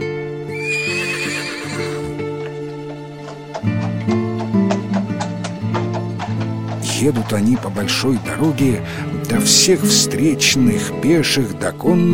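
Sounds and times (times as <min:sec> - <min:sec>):
horse neighing: 0:00.4 - 0:09.9
horse hooves clip-clopping pulling a cart: 0:00.5 - 0:11.5
speech: 0:07.0 - 0:12.1.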